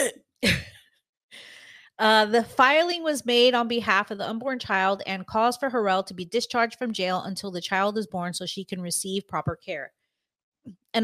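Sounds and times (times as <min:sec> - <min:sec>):
person coughing roughly: 0:00.0 - 0:00.8
speech: 0:00.1 - 0:00.7, 0:02.0 - 0:10.0, 0:10.6 - 0:11.0.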